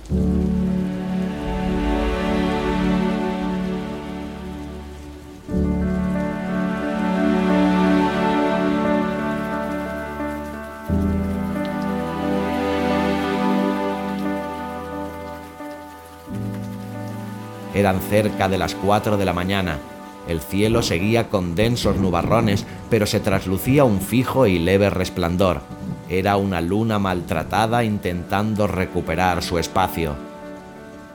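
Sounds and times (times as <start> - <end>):
heavy rain easing after a storm: 0.0 - 31.1
speech: 17.8 - 30.3.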